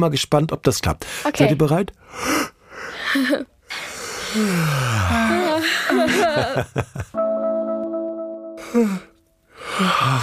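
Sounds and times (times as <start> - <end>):
speech: 0.0 - 2.5, 3.1 - 7.2, 8.7 - 9.1, 9.7 - 10.2
person giving a long hearty yawn: 3.8 - 5.7, 8.6 - 10.2
laughter: 5.2 - 7.2.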